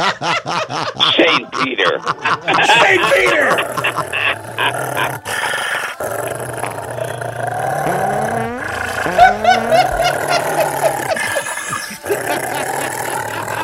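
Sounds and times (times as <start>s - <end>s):
laughter: 0.0s - 6.7s, 7.9s - 13.6s
speech: 1.5s - 5.6s
dog growling: 3.2s - 13.6s.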